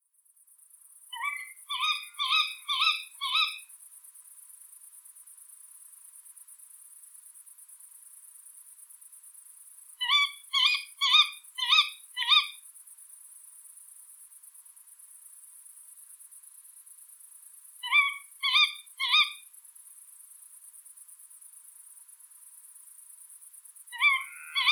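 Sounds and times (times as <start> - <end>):
tawny owl Strix aluco: 1.1 - 3.7, 10.0 - 12.6, 17.8 - 19.4, 23.9 - 24.7.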